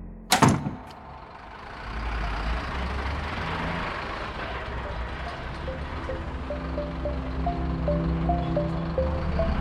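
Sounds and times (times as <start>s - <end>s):
door shut by a woman: 0.3s - 1.2s
vehicle engine idling: 0.7s - 9.6s.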